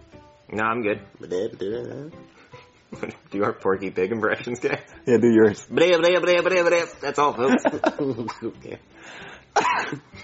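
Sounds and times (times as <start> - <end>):
speech: 0.5 - 2.3, 2.9 - 10.2
person coughing: 9.6 - 10.1.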